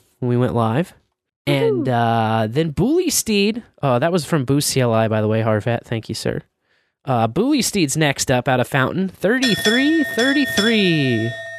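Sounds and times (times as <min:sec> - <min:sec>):
speech: 0:00.2 - 0:11.4
distorted slowed-down low-pitched bell alert: 0:01.5 - 0:02.1, 0:09.4 - 0:11.5.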